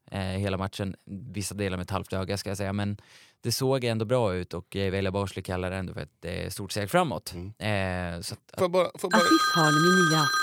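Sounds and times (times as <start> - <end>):
speech: 0.4 - 10.4
phone call ringing tone: 9.1 - 10.4.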